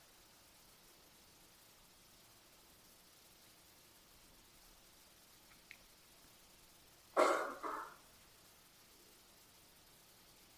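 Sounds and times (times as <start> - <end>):
person coughing in a meditation hall: 7.2 - 8.0.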